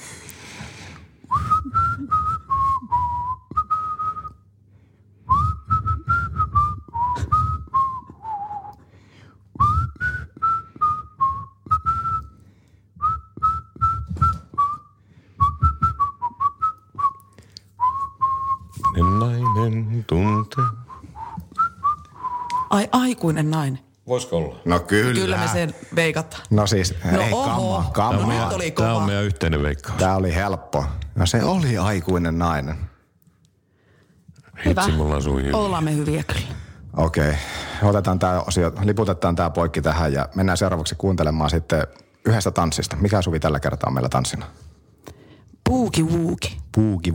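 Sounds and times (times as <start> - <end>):
low hum: 0.0 - 44.5
person whistling a wandering song melody: 1.3 - 4.5, 5.3 - 22.7, 34.7 - 35.8
speech: 22.8 - 32.9, 34.6 - 44.8, 45.7 - 47.1.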